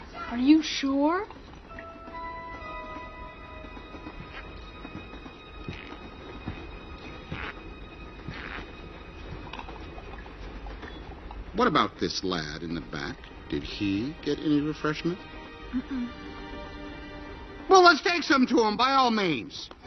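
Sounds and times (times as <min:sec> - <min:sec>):
train cars rolling on rails: 0:00.0 - 0:15.6
speech: 0:00.3 - 0:01.4, 0:11.6 - 0:16.3, 0:17.9 - 0:19.8
train wheels clacking over track joints: 0:00.6 - 0:15.2.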